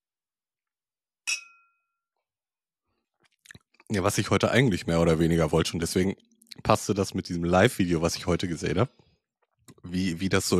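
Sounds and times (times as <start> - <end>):
glasses clinking in a toast: 1.3 - 1.8
speech: 3.9 - 9.0, 9.8 - 10.5.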